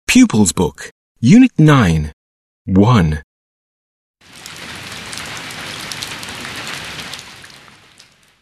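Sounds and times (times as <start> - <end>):
speech: 0.1 - 3.3
steady rain on a surface: 4.2 - 8.4.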